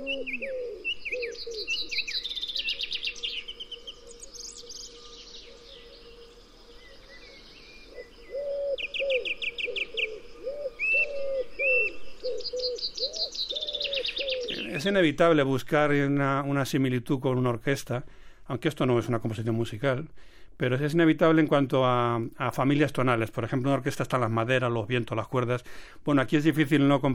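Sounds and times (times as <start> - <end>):
wood pigeon cooing: 0.0 - 15.0
birds chirping and singing: 0.0 - 15.2
speech: 14.8 - 27.1.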